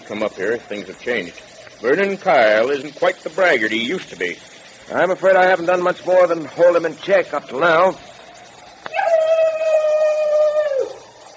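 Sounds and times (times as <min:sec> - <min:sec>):
speech: 0:00.1 - 0:08.1
long wailing human cry: 0:08.9 - 0:11.0.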